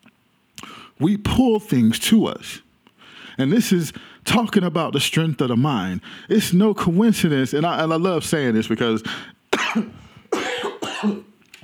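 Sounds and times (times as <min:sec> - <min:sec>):
speech: 0:01.0 - 0:02.6, 0:03.4 - 0:10.0, 0:11.0 - 0:11.3
person coughing: 0:09.6 - 0:11.3.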